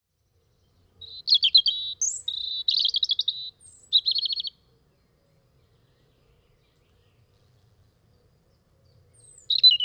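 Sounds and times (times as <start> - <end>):
European robin song with buzzy rattling trills: 1.0 - 4.5, 9.2 - 9.8.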